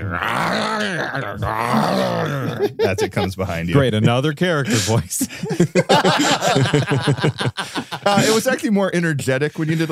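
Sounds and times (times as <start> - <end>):
human voice imitating a space worm's groaning roar: 0.0 - 2.8
speech: 0.1 - 9.9
laughter: 2.0 - 8.6, 9.6 - 9.9.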